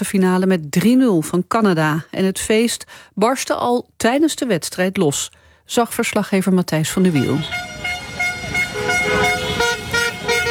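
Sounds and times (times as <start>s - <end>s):
speech: 0.0s - 8.5s
busy street background: 6.9s - 10.5s
car horns honking in celebration: 7.0s - 10.5s.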